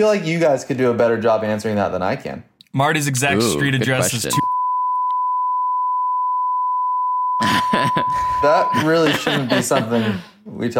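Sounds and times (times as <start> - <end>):
speech: 0.0 - 4.4, 7.9 - 10.7
censor bleep covering a spoken street address: 4.4 - 9.0
laughter: 7.4 - 10.4.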